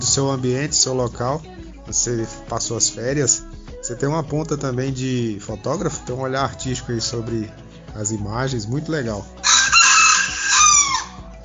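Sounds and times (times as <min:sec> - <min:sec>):
speech: 0:00.2 - 0:09.4
rooster crowing: 0:09.4 - 0:11.2.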